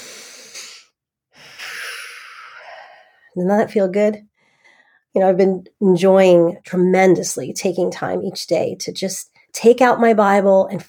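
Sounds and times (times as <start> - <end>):
slow deep breathing in and out: 0.0 - 3.4, 4.3 - 5.1
speech: 3.4 - 4.3, 5.2 - 10.8.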